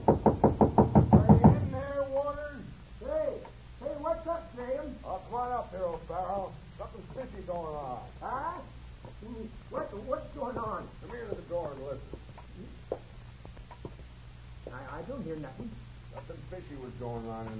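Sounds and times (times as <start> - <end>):
neighbor knocking on a door: 0.0 - 1.8
low steady hum: 0.0 - 17.5
person talking: 1.1 - 12.8, 14.7 - 17.5.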